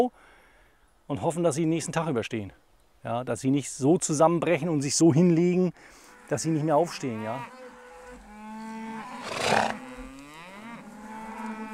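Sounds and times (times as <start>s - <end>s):
speech: 1.1s - 7.6s
cattle mooing loudly: 6.0s - 11.7s.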